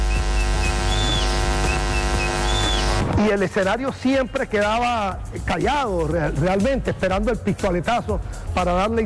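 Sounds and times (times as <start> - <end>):
man whistling a signal before a 500-metre race: 0.0 - 2.9
low electrical hum: 0.0 - 3.1
speech: 3.2 - 9.0.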